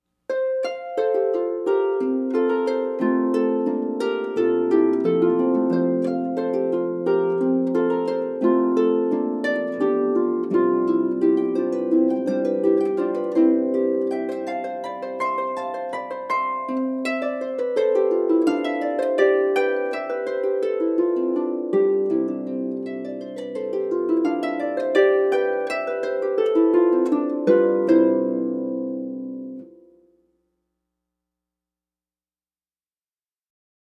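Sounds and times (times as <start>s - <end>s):
harp playing a gavotte: 0.3s - 30.1s.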